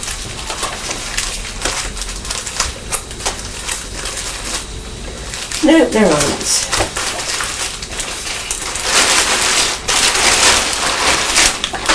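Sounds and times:
plastic bags crackling: 0.0 - 11.9
speech: 5.6 - 6.8.

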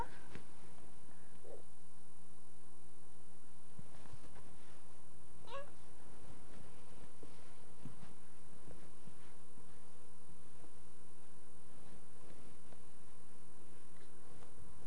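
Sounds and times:
steady low electrical hum: 0.0 - 14.8
cat meowing: 5.5 - 5.8.

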